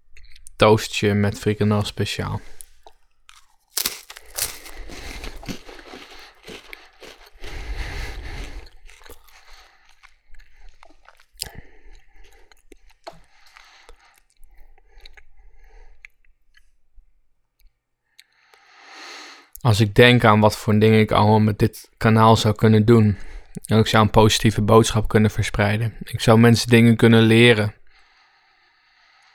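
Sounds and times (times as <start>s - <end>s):
speech: 0.6s - 2.6s, 19.8s - 27.8s
wet chewing of a cracker with smaller crunches and clicks: 2.4s - 15.3s
crunchy bite into a cracker with topping: 2.5s - 10.2s.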